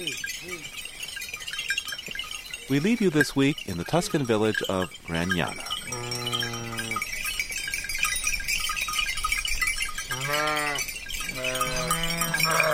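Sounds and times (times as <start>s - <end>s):
jangle of many small sheep bells in Tuscany: 0.0s - 12.7s
speech: 2.7s - 6.2s
belled sheep bleating coming down a mountain in Gragnano Italy: 10.1s - 12.7s.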